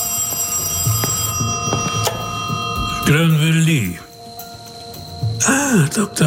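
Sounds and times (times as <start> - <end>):
telephone ringing with a shrill bell tone: 0.0 - 4.0
speech: 3.1 - 4.1, 5.4 - 6.2.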